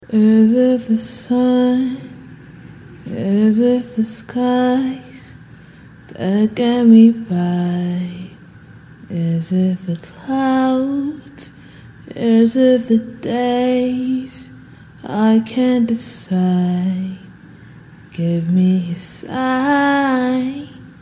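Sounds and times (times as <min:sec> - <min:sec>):
a cappella pop vocals in B minor: 0:00.0 - 0:02.4, 0:03.0 - 0:17.4, 0:18.0 - 0:21.0.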